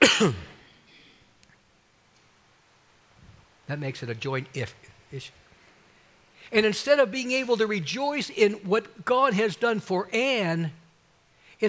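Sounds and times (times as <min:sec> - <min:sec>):
audience coughing and clearing throats on cue: 0:00.0 - 0:01.1
quiet hum: 0:00.0 - 0:11.6
speech: 0:00.2 - 0:00.5, 0:03.7 - 0:05.4, 0:06.4 - 0:10.8.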